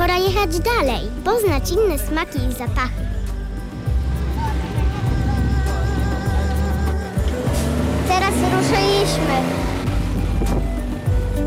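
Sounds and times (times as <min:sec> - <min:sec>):
speech: 0:00.4 - 0:03.3, 0:08.1 - 0:09.8
small motorized rickshaw engine puttering and revving: 0:03.8 - 0:11.2
heavy wind rush: 0:09.8 - 0:10.8.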